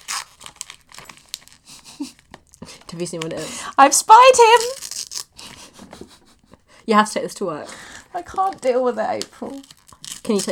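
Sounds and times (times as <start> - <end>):
gift wrapping paper being unwrapped and torn: 0.0 - 5.7, 7.8 - 10.5
speech: 3.0 - 4.8, 6.9 - 9.7, 10.3 - 10.5.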